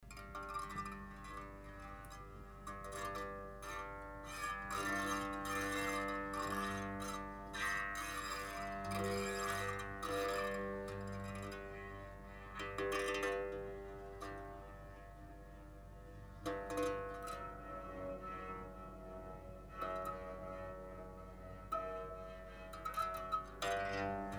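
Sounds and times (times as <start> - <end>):
harp: 0.0 - 24.3.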